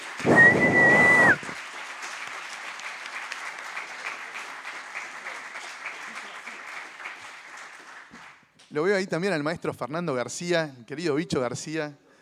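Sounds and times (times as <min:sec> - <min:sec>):
audience applause: 0:00.0 - 0:08.4
high sustained whistle: 0:00.3 - 0:01.4
speech: 0:08.8 - 0:12.0.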